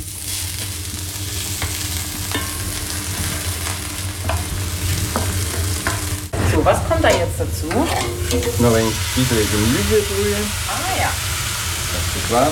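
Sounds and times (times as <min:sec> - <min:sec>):
onions frying in a pan: 0:00.0 - 0:12.5
speech: 0:06.6 - 0:11.3, 0:12.2 - 0:12.5.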